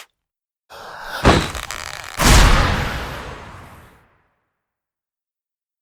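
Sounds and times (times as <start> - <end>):
transform sound effect: 1.3 - 4.0.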